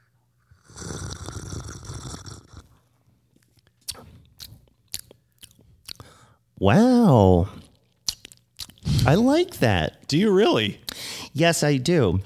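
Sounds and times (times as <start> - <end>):
noisy slurping sip of a ginger ale flavored drink: 0.5 - 2.8
swallow: 0.6 - 2.8
sharp wet mouth clicks: 3.4 - 6.2, 7.6 - 9.1, 10.8 - 11.0
speech: 6.6 - 7.6, 9.1 - 10.8, 11.4 - 12.2.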